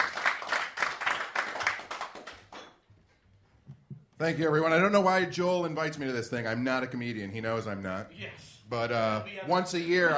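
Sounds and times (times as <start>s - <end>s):
audience applauding to welcome a guest: 0.0s - 2.6s
speech: 4.2s - 10.1s.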